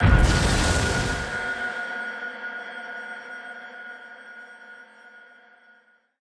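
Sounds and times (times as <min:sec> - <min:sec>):
beacon deactivating: 0:00.0 - 0:01.8.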